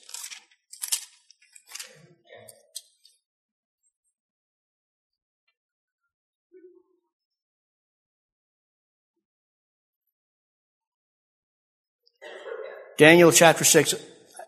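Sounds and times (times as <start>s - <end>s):
many Bible pages flipped in a room: 0.0s - 2.9s
speech: 13.0s - 14.1s.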